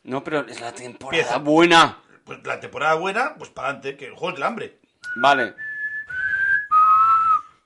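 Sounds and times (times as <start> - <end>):
speech: 0.1 - 5.6
person whistling a short four-note melody: 5.0 - 7.6.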